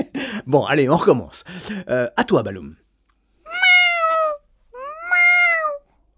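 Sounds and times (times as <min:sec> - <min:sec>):
speech: 0:00.4 - 0:02.8
cat meowing: 0:03.5 - 0:05.9.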